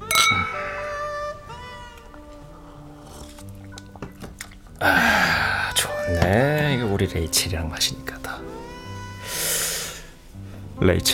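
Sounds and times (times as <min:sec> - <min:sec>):
glasses clinking in a toast: 0:00.0 - 0:00.9
speech: 0:04.8 - 0:05.0, 0:05.8 - 0:08.2, 0:10.8 - 0:11.1.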